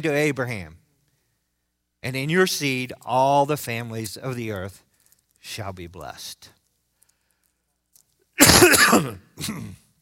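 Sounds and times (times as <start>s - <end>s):
speech: 0.0s - 0.8s, 2.0s - 4.8s, 5.4s - 6.6s, 8.5s - 9.8s
harsh raspy throat clearing: 8.4s - 9.9s
short cough: 8.4s - 9.9s.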